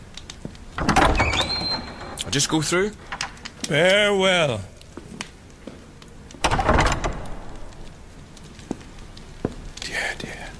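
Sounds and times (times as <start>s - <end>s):
heavy shrine door grinding and scraping as it slides open: 0.8s - 2.4s, 6.4s - 7.8s
rising metallic squeal of sliding door: 1.2s - 2.2s
speech: 2.3s - 4.7s.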